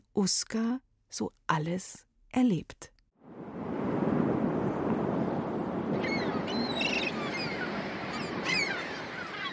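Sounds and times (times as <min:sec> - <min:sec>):
speech: 0:00.2 - 0:02.9
strong wind roaring over the sea below cliffs: 0:03.2 - 0:09.5
sea surf crashing below steep cliffs: 0:03.3 - 0:09.5
cliff-dwelling seabirds crying: 0:05.9 - 0:09.5.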